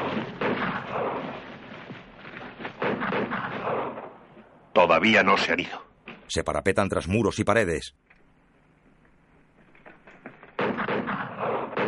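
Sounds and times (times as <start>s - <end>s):
gunshots in a 1960 western film scene: 0.0s - 4.3s, 10.5s - 11.8s
speech: 4.8s - 8.0s.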